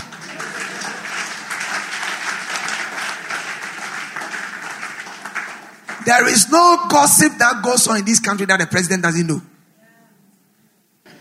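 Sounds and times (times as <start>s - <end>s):
audience clapping and applauding: 0.0s - 6.7s
speech: 6.1s - 9.5s.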